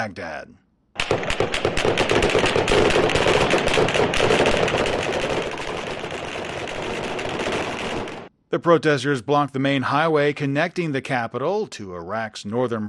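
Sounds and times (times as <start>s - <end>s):
speech: 0.0s - 5.1s, 8.5s - 12.8s
automatic gunfire as police and army disperse protesters in Baghdad: 1.0s - 8.3s.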